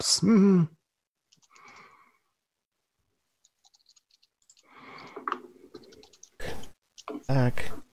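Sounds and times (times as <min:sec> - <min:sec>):
speech: 0:00.0 - 0:00.8, 0:07.3 - 0:07.8
computer mouse clicking: 0:01.3 - 0:01.9, 0:03.4 - 0:07.3.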